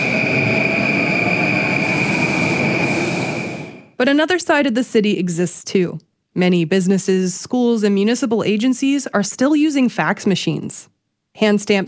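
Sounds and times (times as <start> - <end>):
bullet train roaring past: 0.0 - 4.2
thin high whine of a bullet train: 0.0 - 4.2
speech: 4.0 - 11.8.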